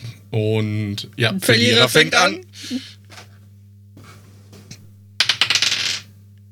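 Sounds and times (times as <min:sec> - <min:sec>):
low steady hum: 0:00.0 - 0:06.5
speech: 0:00.3 - 0:03.2
dice clattering across a hard surface: 0:05.2 - 0:06.1.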